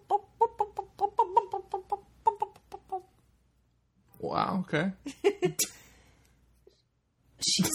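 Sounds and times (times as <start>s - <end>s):
human voice imitating a clucking hen: 0.0s - 3.1s
speech: 4.3s - 5.8s.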